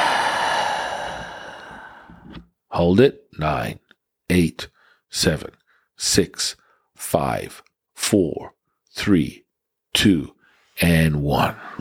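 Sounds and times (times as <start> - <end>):
slow exhale after a held breath during a Taoist neigong breathing exercise: 0.0 - 2.4
speech: 2.8 - 9.4, 10.0 - 11.7.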